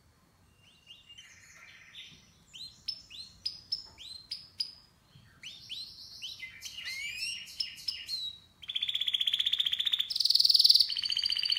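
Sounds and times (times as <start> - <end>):
faint low background hiss: 0.0 - 11.5
canary singing with whistled notes and sharp chirps: 0.6 - 11.5.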